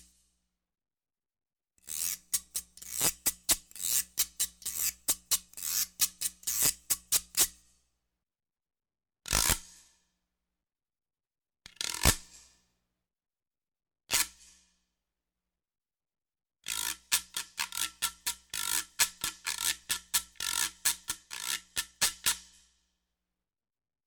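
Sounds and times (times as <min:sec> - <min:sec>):
percussion accent scrape: 0:02.0 - 0:07.5, 0:16.7 - 0:22.6.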